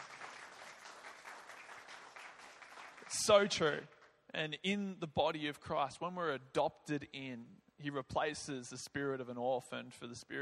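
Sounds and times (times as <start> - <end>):
audience applause: 0.0 - 3.7
speech: 3.1 - 10.3.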